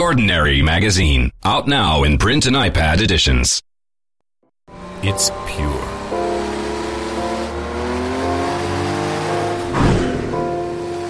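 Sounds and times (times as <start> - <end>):
speech: 0.1 - 3.7, 4.7 - 5.9
Porsche 959 Sport Prototype sports car engine revving: 4.7 - 11.0.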